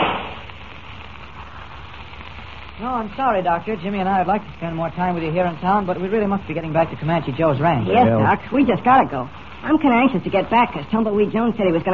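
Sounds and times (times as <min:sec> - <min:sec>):
single gunshot in a radio drama: 0:00.0 - 0:00.5
speech: 0:02.8 - 0:11.9.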